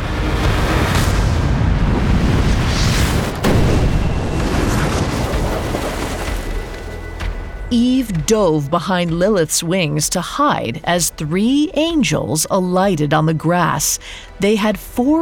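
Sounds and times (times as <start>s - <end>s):
fireball explosion roaring and crackling: 0.8s - 6.8s
speech: 7.7s - 15.1s.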